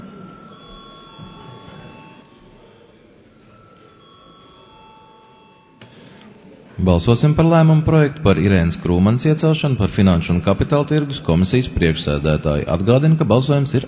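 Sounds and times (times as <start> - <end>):
parliament chamber electric bell ringing before vote: 0.0 - 6.2
faint murmur: 0.0 - 7.1
speech: 6.8 - 13.8.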